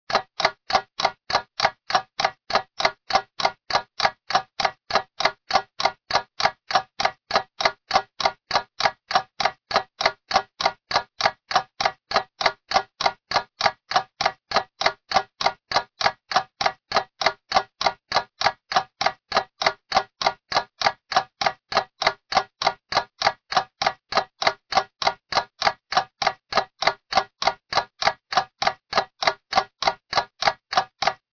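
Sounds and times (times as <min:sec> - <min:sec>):
alarm clock ticking: 0:00.1 - 0:31.3.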